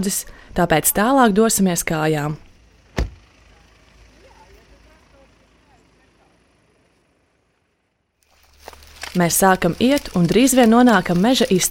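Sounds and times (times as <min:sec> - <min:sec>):
speech: 0:00.0 - 0:02.5, 0:09.2 - 0:11.7
car engine idling rumble: 0:01.4 - 0:11.7
car door thunk: 0:02.9 - 0:03.2
rustling movement of people getting out of a car: 0:08.2 - 0:11.7.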